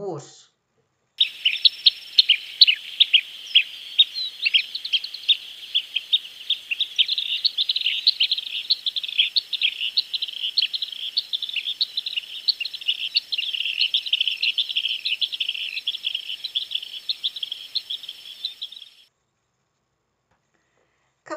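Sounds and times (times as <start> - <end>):
speech: 0.0 - 0.5
faint insect-like buzz: 1.2 - 19.1
manuelzinho-da-crôa bird chirping rapidly: 1.2 - 19.1.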